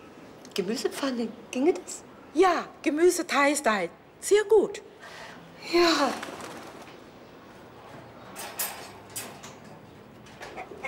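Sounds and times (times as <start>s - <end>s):
speech: 0.6s - 6.3s
chicken clucking: 10.4s - 10.8s.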